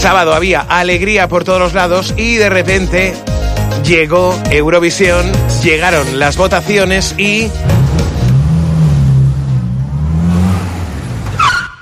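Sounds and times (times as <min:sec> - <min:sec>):
speech: 0:00.0 - 0:07.8
car engine revving: 0:07.5 - 0:11.7
tire screech from sudden braking: 0:07.7 - 0:11.7.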